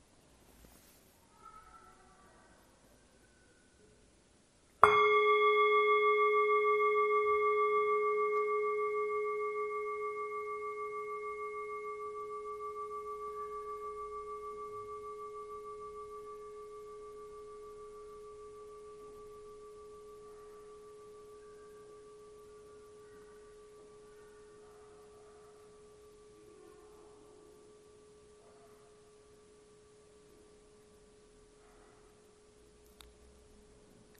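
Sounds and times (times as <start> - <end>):
single bell strike with lingering harmonics: 4.8 - 24.8.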